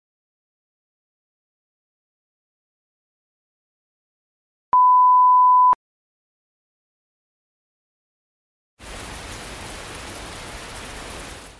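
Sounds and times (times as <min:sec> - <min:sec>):
steady beep: 0:04.8 - 0:05.8
rain falling outdoors: 0:08.8 - 0:11.5.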